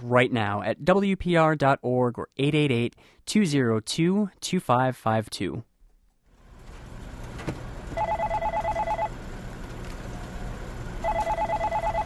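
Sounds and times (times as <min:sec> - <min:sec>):
speech: 0:00.0 - 0:05.7
low hum: 0:00.0 - 0:12.0
telephone ringing in electronic trilling bursts: 0:08.0 - 0:09.2, 0:11.0 - 0:12.0.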